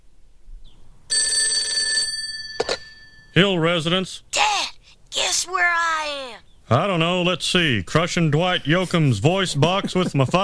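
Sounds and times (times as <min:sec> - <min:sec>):
telephone bell ringing: 0:01.1 - 0:03.4
speech: 0:03.4 - 0:04.5, 0:05.4 - 0:10.4.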